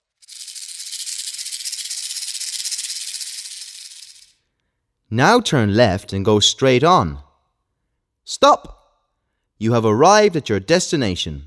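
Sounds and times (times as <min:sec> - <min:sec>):
snake hissing: 0:00.0 - 0:04.3
speech: 0:05.1 - 0:07.3, 0:08.3 - 0:08.8, 0:09.6 - 0:11.4.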